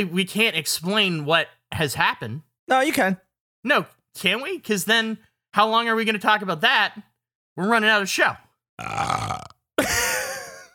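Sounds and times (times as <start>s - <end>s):
speech: 0.0s - 9.3s
person burping: 8.8s - 10.7s.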